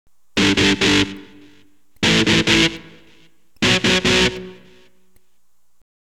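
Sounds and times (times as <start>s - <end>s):
electric guitar power chord on E: 0.4s - 5.2s.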